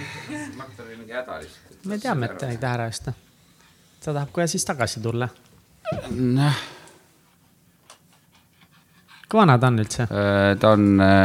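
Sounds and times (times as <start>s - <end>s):
speech: 0.6s - 3.3s, 4.0s - 6.8s, 9.3s - 11.2s
dog panting: 7.3s - 9.9s.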